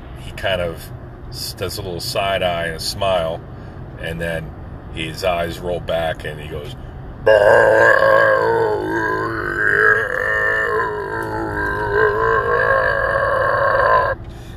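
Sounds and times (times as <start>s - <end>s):
speech: 0.2s - 9.0s
long drawn-out burp: 7.3s - 14.2s.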